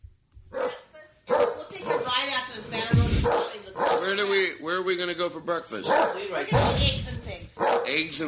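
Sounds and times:
dog barking: 0.5s - 2.2s, 3.0s - 4.4s, 5.8s - 6.9s, 7.6s - 8.0s
speech: 4.1s - 8.2s.

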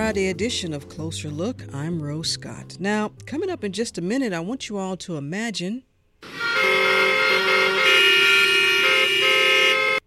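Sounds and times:
speech: 0.0s - 6.9s
car horns honking in city traffic: 6.2s - 10.0s.

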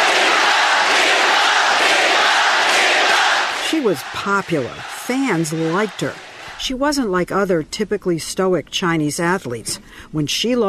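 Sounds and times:
stadium crowd cheering wildly: 0.0s - 6.8s
speech: 3.8s - 10.6s.

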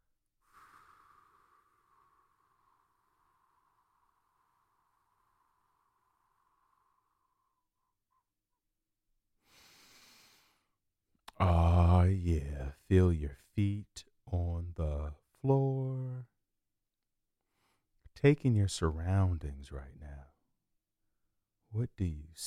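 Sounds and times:
short breathy puff of air: 0.4s - 7.2s, 9.4s - 10.7s
long slow exhale: 0.4s - 7.9s, 9.4s - 10.7s
speech: 11.4s - 16.3s, 18.2s - 20.3s, 21.7s - 22.4s.

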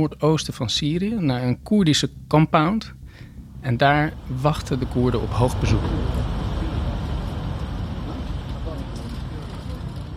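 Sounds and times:
speech: 0.0s - 3.0s, 3.6s - 6.2s
convoy of white Toyota Land Cruisers engines rumbling crossing into Syria: 2.2s - 10.1s
tire roar of Toyota Land Cruisers on the road: 3.4s - 10.1s.

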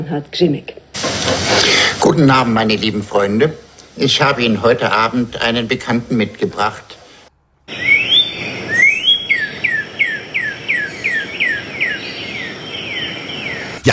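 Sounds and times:
speech: 0.0s - 7.0s
faint hiss: 0.0s - 13.9s
northern cardinal Cardinalis cardinalis singing: 7.7s - 13.8s.

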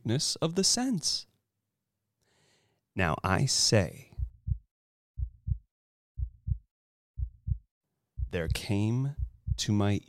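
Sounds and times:
speech: 0.0s - 1.3s, 3.0s - 4.1s, 8.3s - 10.0s
low heartbeat: 4.2s - 4.6s, 5.2s - 7.6s, 8.2s - 9.7s.

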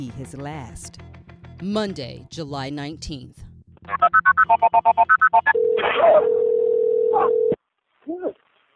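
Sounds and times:
speech: 0.0s - 3.5s, 4.5s - 7.4s
steady telephone ringing tone on the line: 4.7s - 7.6s.

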